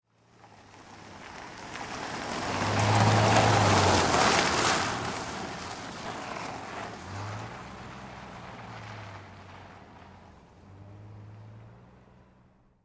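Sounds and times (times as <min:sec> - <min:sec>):
car passing at medium speed: 0:00.1 - 0:12.8.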